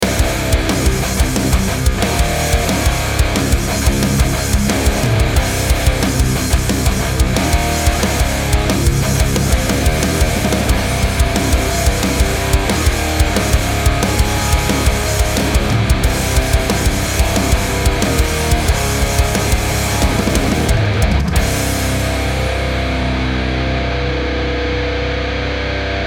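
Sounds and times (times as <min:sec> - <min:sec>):
metal groove 90 bpm: 0:00.0 - 0:26.0.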